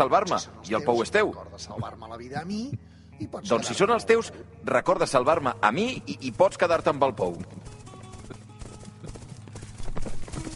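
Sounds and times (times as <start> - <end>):
speech: 0.0 - 7.8
horses galloping: 6.1 - 10.5.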